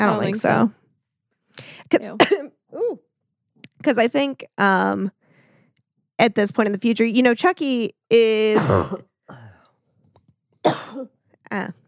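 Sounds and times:
speech: 0.0 - 0.8, 1.6 - 3.0, 3.8 - 5.2, 6.2 - 9.4, 10.6 - 11.8
person coughing from allergies flared up by storms: 2.0 - 2.9, 8.6 - 9.6, 10.7 - 11.1
throat clearing: 8.6 - 9.6.

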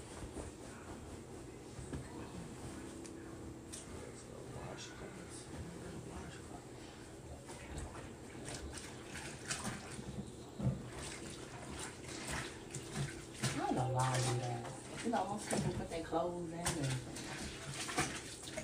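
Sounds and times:
faint low hum: 0.0 - 18.6
water gushing into a washing machine drum: 7.5 - 18.6.

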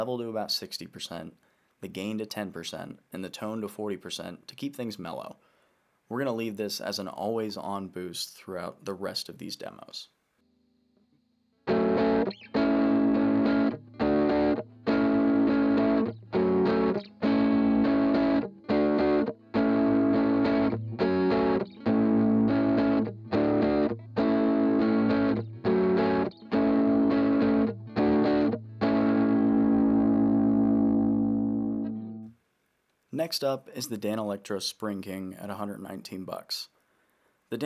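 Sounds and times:
speech: 0.0 - 5.5, 6.1 - 10.2, 33.2 - 36.7, 37.5 - 37.6
electric guitar strumming chords through clean op-amp boost pedal: 11.7 - 32.3.

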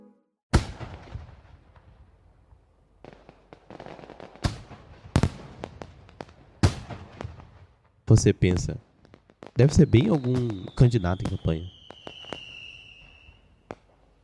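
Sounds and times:
fireworks booming outdoors: 0.5 - 2.2, 3.0 - 14.0
fireworks popping and crackling: 3.0 - 14.0
speech: 8.1 - 8.9, 9.6 - 11.8.

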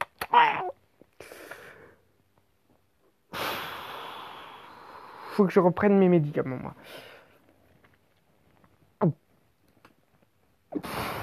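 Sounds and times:
loud exaggerated sniffing from a single voice: 3.3 - 5.3, 10.7 - 11.2
speech: 5.4 - 7.1, 9.0 - 9.2.

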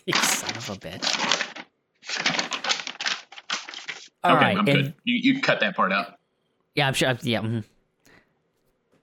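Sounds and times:
speech: 0.0 - 1.6, 4.2 - 6.2, 6.8 - 7.7
papers shuffling with crinkly rustling: 0.0 - 4.2.

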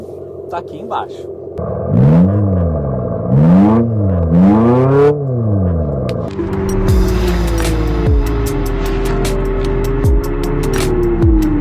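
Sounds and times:
speech: 0.0 - 2.3
synthetic engine sound from an electric car revving: 1.6 - 11.5.

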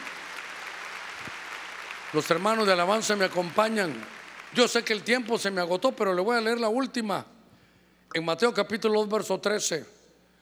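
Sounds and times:
church audience clapping hands loudly: 0.0 - 6.0
speech: 2.1 - 7.3, 8.1 - 10.0.

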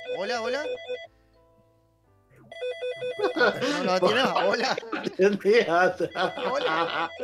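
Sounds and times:
telephone ringtone for an incoming call: 0.0 - 1.1, 2.5 - 4.8, 5.8 - 7.2
speech: 0.2 - 1.1, 3.2 - 7.2
laughter: 3.0 - 7.2.

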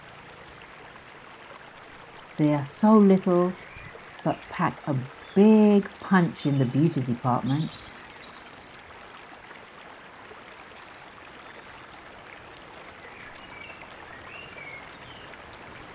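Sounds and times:
river water flowing and bubbling: 0.0 - 15.9
speech: 2.4 - 7.9.

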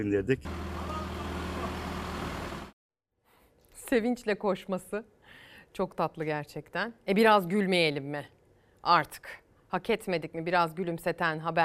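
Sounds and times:
speech: 0.0 - 0.8, 3.9 - 11.6
backhoe loader heavy diesel engine roaring in a village: 0.5 - 2.8.

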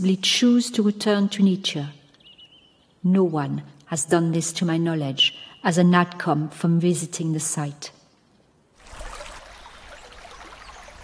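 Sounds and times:
speech: 0.0 - 2.0, 3.0 - 8.0
small waterfalls trickling down stony slope: 8.8 - 11.0.

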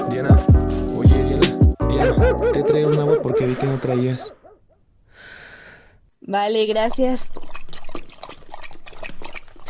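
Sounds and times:
speech: 0.2 - 0.6, 2.6 - 4.4, 6.2 - 7.5
laughter: 1.9 - 4.4
dog lapping water: 6.8 - 9.6.

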